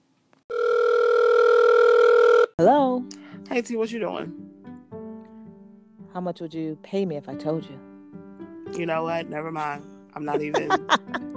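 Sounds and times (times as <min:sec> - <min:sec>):
continuous electronic phone line ringing tone: 0:00.5 - 0:02.6
speech: 0:02.6 - 0:04.4, 0:06.2 - 0:07.9, 0:08.8 - 0:11.3
laughter: 0:10.3 - 0:11.3.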